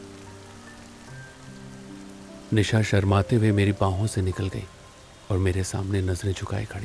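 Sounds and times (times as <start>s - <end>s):
heavy rain: 0.0s - 6.8s
speech: 2.5s - 6.8s.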